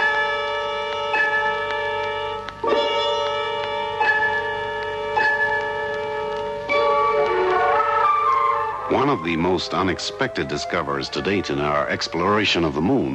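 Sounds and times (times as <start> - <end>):
large bell struck repeatedly: 0.0 - 8.0
speech: 9.1 - 13.1.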